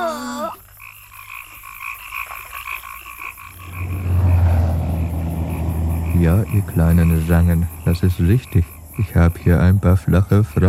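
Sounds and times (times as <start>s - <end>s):
frogs croaking in a chorus: 0.0s - 10.6s
deep rumble: 3.4s - 9.8s
speech: 6.3s - 10.6s.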